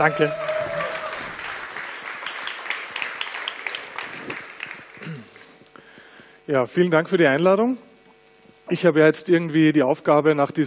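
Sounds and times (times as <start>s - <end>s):
speech: 0.0s - 0.4s, 6.5s - 7.9s, 8.7s - 10.6s
audience applause welcoming a speaker at a talk: 0.0s - 5.6s.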